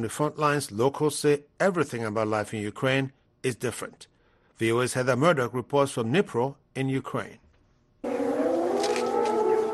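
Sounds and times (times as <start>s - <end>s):
speech: 0.0s - 7.4s
civil defense air raid siren in Ukraine wailing: 8.0s - 9.7s.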